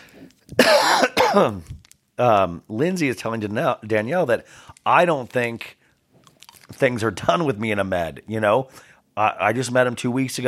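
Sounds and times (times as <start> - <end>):
person coughing: 0.6 - 1.7
speech: 0.7 - 5.8, 6.7 - 10.4.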